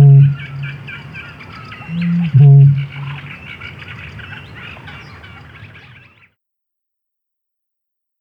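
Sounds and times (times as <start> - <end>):
bittern deep low boom: 0.0 - 0.8, 1.9 - 3.2
small birds twittering faintly: 0.0 - 6.4.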